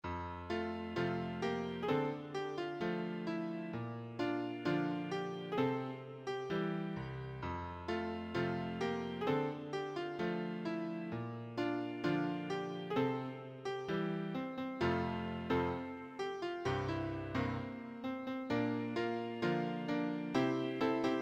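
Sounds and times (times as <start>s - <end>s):
church hymn piano accompaniment: 0.0s - 21.2s.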